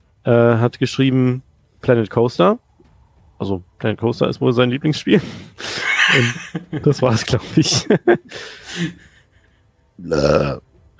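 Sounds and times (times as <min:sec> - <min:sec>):
speech: 0:00.2 - 0:02.6, 0:03.4 - 0:09.1, 0:10.0 - 0:10.9
laughter: 0:05.6 - 0:09.2
person sneezing loudly: 0:08.3 - 0:09.0
breathy rising intake before a sneeze: 0:08.3 - 0:09.2.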